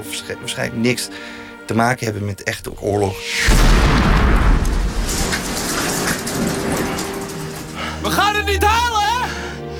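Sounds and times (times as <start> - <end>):
speech: 0.0 - 4.7, 8.0 - 9.0
loud deep grenade explosion: 3.4 - 7.4
dense shower of crackling debris and hissing: 3.4 - 8.3.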